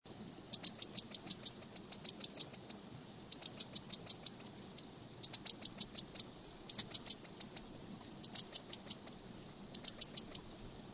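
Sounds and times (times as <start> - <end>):
quail: 0.5 - 10.5.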